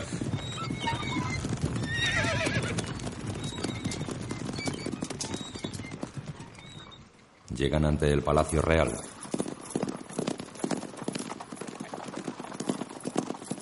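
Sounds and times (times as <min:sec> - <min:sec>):
horse whinnying: 0:00.0 - 0:07.0
horse hooves clattering as mounted riders set off: 0:00.0 - 0:07.6, 0:08.3 - 0:13.6
speech: 0:07.6 - 0:09.1.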